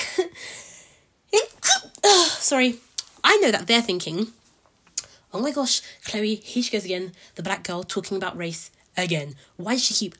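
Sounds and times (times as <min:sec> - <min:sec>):
person sneezing: 0:01.4 - 0:02.5
speech: 0:02.5 - 0:04.4, 0:05.3 - 0:10.1.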